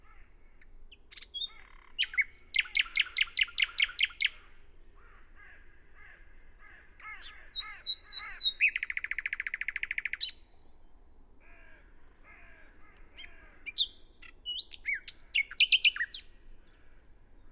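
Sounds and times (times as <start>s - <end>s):
Common nightingale song, Luscinia megarhynchos: 0.0s - 5.0s, 7.0s - 11.1s, 13.0s - 17.4s.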